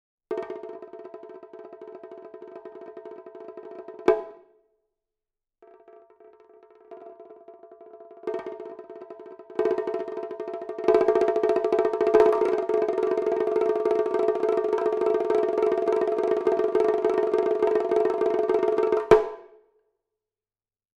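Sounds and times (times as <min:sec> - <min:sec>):
taiko shimedaiko drum roll: 0:08.2 - 0:19.4.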